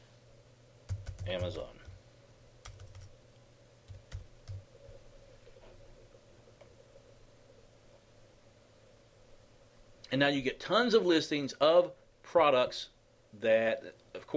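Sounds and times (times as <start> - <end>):
faint steady hum: 0.0 - 14.3
typing on a computer keyboard: 0.9 - 1.9, 2.6 - 3.1, 3.9 - 4.6
speech: 1.3 - 1.8, 10.1 - 14.3.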